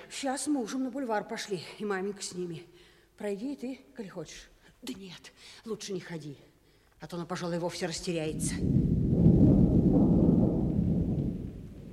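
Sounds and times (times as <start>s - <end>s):
speech: 0.1s - 9.0s
deep continuous thunder rumbling: 8.3s - 11.9s.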